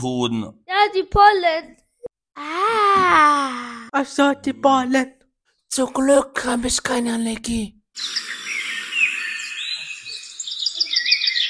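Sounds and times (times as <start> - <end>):
speech: 0.0 - 1.8, 2.4 - 8.4
birds chirping and twittering: 8.0 - 11.4.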